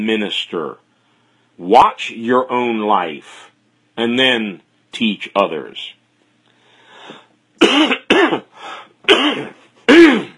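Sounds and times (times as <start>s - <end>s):
speech: 0.0s - 0.9s, 1.6s - 6.0s, 7.1s - 10.3s
person clearing throat: 7.6s - 10.3s
person coughing: 7.6s - 10.3s.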